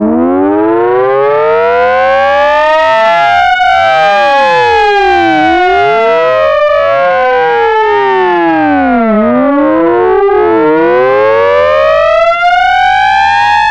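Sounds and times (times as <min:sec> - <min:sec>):
civil defense alert siren: 0:00.0 - 0:13.7.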